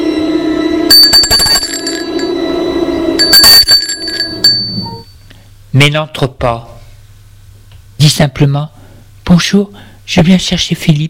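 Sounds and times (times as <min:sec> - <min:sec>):
doorbell ringing at a house: 0:00.9 - 0:05.2
speech: 0:05.8 - 0:06.7, 0:08.0 - 0:11.0.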